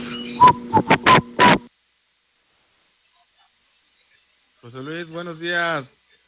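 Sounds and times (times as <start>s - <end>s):
jeering whistle blasts: 0.0s - 1.7s
speech: 4.6s - 6.0s.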